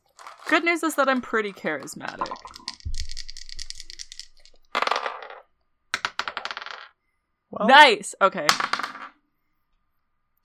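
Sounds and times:
dice clattering and rattling: 0.1s - 7.0s, 8.5s - 9.2s
speech: 0.5s - 2.6s, 7.6s - 8.8s.

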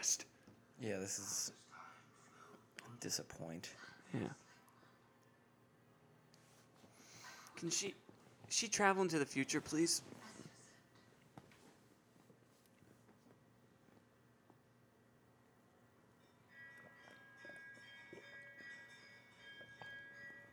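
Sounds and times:
speech: 0.0s - 1.7s, 2.9s - 4.4s, 7.6s - 10.2s
bells ringing: 16.2s - 20.5s.

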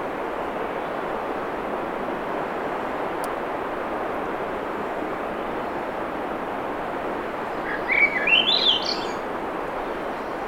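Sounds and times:
surf noise at Schoodic Peninsula, Maine: 0.0s - 10.4s
Swainson's thrush singing flute-like notes at Schoodic Peninsula, Maine: 7.7s - 9.2s.

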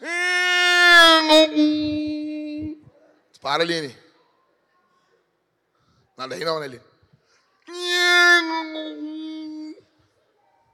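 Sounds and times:
adult voice mimicking a boy crying: 0.0s - 2.8s, 7.7s - 9.8s
speech: 3.5s - 4.0s, 6.2s - 6.9s.

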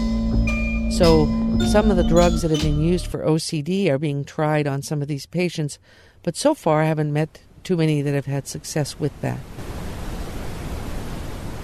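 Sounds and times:
speech: 0.9s - 9.7s
steady pink noise: 7.5s - 11.6s.

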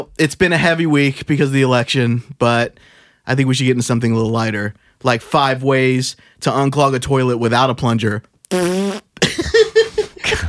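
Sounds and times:
speech: 0.0s - 9.0s
fart sound made with the mouth: 8.5s - 9.2s.

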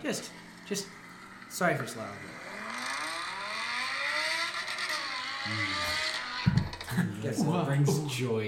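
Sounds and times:
speech: 0.0s - 1.0s, 1.6s - 2.4s, 5.4s - 5.8s, 7.2s - 8.4s
sports car exhaust roaring as the engine revs: 0.0s - 7.0s.

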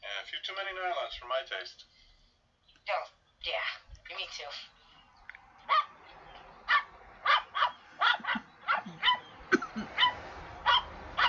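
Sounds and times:
speech: 0.2s - 2.0s, 2.9s - 4.8s
dog barking: 5.7s - 6.0s, 6.7s - 11.2s.

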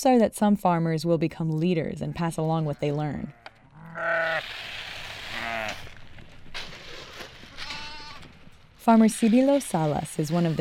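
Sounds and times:
speech: 0.0s - 3.4s, 4.0s - 4.7s, 8.8s - 10.5s
flock of sheep bleating: 2.0s - 4.5s, 5.2s - 5.9s, 7.5s - 8.3s, 9.2s - 10.5s.

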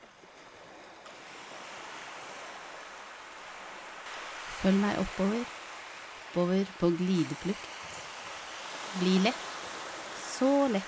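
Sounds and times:
ocean surf washing: 0.0s - 10.8s
speech: 4.6s - 5.6s, 6.3s - 7.8s, 8.9s - 9.5s, 10.4s - 10.8s.

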